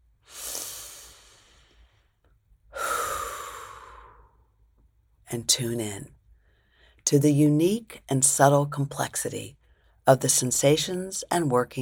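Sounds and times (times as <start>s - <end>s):
deep breath: 0.2s - 4.6s, 6.3s - 7.0s
speech: 5.3s - 6.2s, 7.1s - 11.8s.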